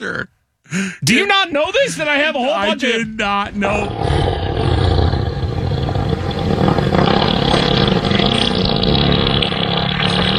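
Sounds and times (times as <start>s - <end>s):
speech: 0.0s - 4.4s
elephant farting: 3.0s - 10.3s.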